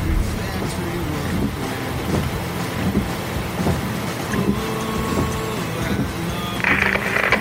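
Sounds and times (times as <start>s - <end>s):
deep truck engine rumble: 0.0s - 7.3s
low thumps from the road: 0.0s - 7.3s
rain pattering on a moving truck: 0.0s - 7.3s.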